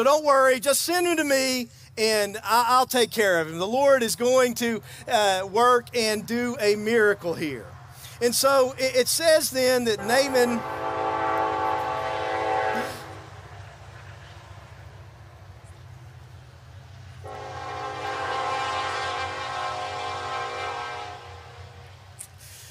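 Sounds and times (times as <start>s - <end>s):
speech: 0.0s - 11.0s
low rumble of a passing train: 3.8s - 22.5s
train horn blasting: 10.0s - 13.4s, 17.2s - 22.0s.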